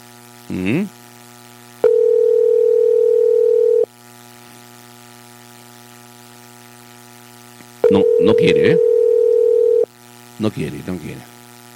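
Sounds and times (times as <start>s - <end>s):
speech: 0.5s - 1.0s, 8.0s - 8.9s, 10.4s - 11.3s
telephone ringing tone while calling someone: 1.8s - 3.9s, 7.8s - 9.9s.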